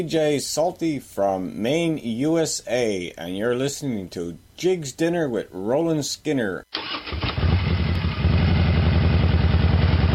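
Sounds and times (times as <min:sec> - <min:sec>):
speech: 0:00.0 - 0:07.0
motorcycle engines idling at a charity motorcycle ride: 0:07.4 - 0:10.1.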